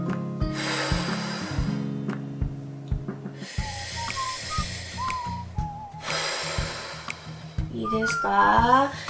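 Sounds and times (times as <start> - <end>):
steady tonal backdrop: 0.4 - 9.0
deep breathing during a guided relaxation exercise: 0.5 - 2.0, 3.3 - 7.7
soft whistly tones: 3.5 - 9.0
speech: 7.9 - 9.0.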